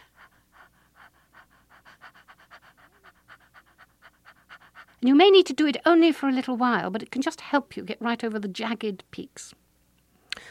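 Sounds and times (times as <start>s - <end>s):
woman's quick light panting labour breaths: 0.0s - 5.1s
speech: 5.0s - 9.6s.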